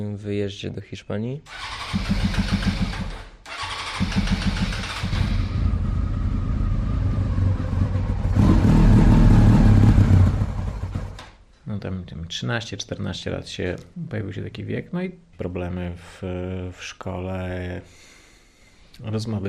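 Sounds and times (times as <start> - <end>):
speech: 0.0 - 2.7, 12.3 - 18.1, 19.0 - 19.4
motorcycle engine starting, idling and revving on a race track: 1.5 - 11.4.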